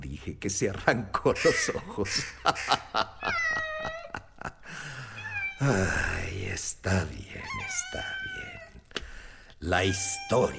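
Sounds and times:
speech: 0.2 - 3.4, 5.6 - 8.2, 9.6 - 10.5
laughter: 0.9 - 6.0
impatient cat meowing insistently: 3.2 - 4.1, 5.0 - 5.9, 7.3 - 8.9, 9.7 - 10.5.

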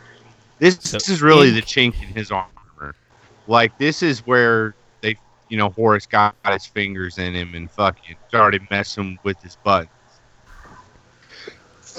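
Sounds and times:
speech: 0.6 - 10.0
sneeze: 0.8 - 2.7.

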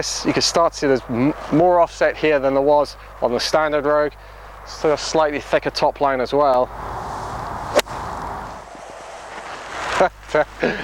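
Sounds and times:
speech: 0.0 - 7.2, 10.0 - 10.8
steady outdoor wind hiss: 6.5 - 10.8
golf iron striking a ball: 7.4 - 9.8.

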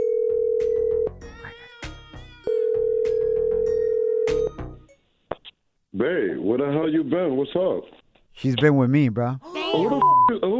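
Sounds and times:
telephone ringback tone: 0.0 - 1.1, 2.5 - 4.5
speech: 6.0 - 10.5.

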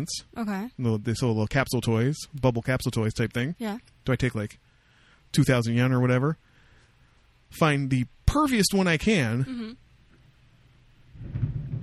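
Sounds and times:
speech: 0.0 - 4.7, 5.3 - 6.5, 7.5 - 9.8, 11.2 - 11.4
thunder rumbling during a storm: 11.1 - 11.8.

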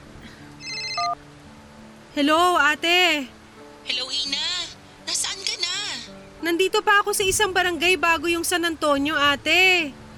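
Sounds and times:
phone ringtone announcing an incoming call: 0.6 - 1.2
speech: 2.2 - 3.4, 6.4 - 10.0.

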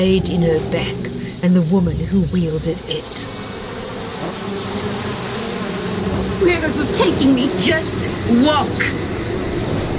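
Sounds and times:
speech: 0.0 - 3.5, 6.4 - 9.2
mosquitoes buzzing in a swamp: 0.0 - 9.9.

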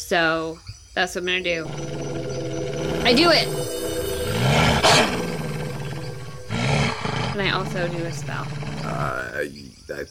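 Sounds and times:
speech: 0.0 - 2.1, 3.0 - 3.7, 7.4 - 10.0
wolf growl swelling into a breathy roar and snarl: 1.7 - 9.4.

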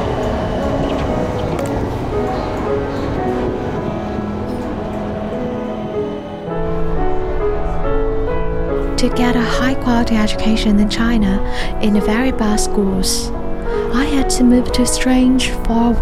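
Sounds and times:
tonal hums and squeals of arriving train: 0.0 - 9.0
train rumbling into a station: 0.0 - 15.9
speech: 9.0 - 15.9.

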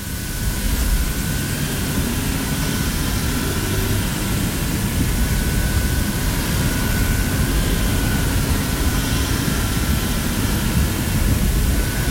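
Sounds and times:
Xbox 360 Slim console cooling fan running at idle: 0.0 - 12.1.

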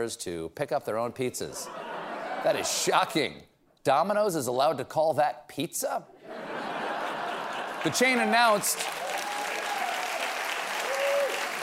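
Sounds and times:
speech: 0.0 - 6.1, 7.8 - 9.0
laughter: 1.5 - 3.2, 6.2 - 8.9
audience applause: 7.0 - 11.6.

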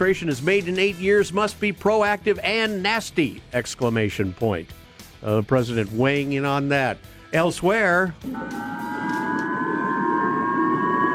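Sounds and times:
speech: 0.0 - 9.0
Japanese civil defense warning sirens wailing during a missile launch: 8.2 - 11.1.

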